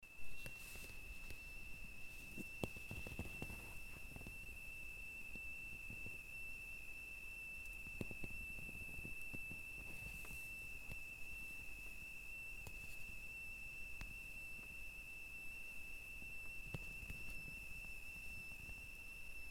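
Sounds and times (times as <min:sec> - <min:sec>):
Kaifa MA120 electricity meter noise: 0:00.0 - 0:19.5.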